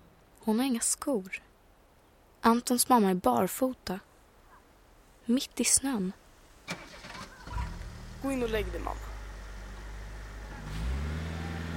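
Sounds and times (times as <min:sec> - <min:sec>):
speech: 0:00.4 - 0:01.5, 0:02.4 - 0:04.1, 0:05.3 - 0:06.9, 0:08.2 - 0:09.1
ambulance engine humming driving off through snow: 0:06.7 - 0:11.7.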